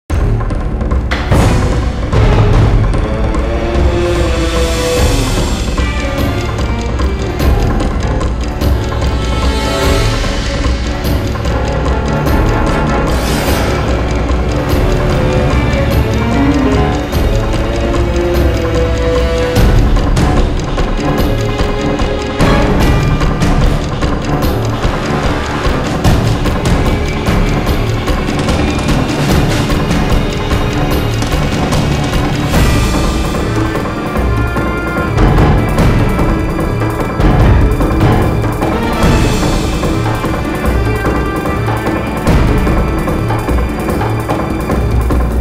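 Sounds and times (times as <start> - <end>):
fight music: 0.1 - 45.3.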